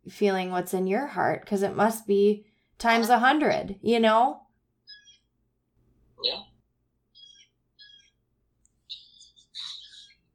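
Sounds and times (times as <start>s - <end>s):
speech: 0.0s - 4.4s, 6.2s - 6.5s
loud bird chirping: 4.8s - 5.4s, 6.2s - 10.3s.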